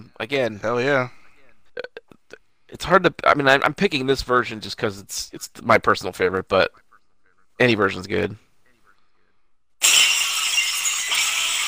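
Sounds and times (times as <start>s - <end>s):
speech: 0.2s - 1.2s, 2.7s - 6.8s, 7.6s - 8.4s
glass shattering: 9.8s - 11.6s.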